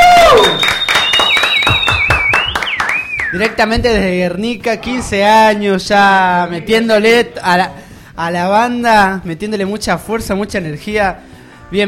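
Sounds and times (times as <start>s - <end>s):
sustained high whistle: 0.0s - 3.5s
small group applauding a band on a live show: 0.2s - 3.6s
speech: 3.4s - 11.8s.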